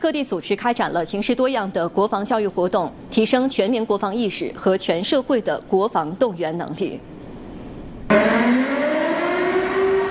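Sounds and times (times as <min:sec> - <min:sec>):
speech: 0:00.0 - 0:07.1, 0:08.1 - 0:08.7
air-raid warning siren wailing: 0:08.1 - 0:10.0.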